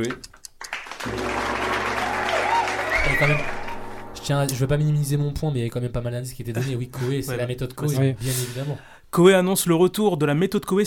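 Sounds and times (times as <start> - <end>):
speech: 0.0 - 0.3, 3.0 - 3.6, 4.2 - 10.8
applause from a small group: 0.0 - 4.0
people whooping: 1.0 - 4.1.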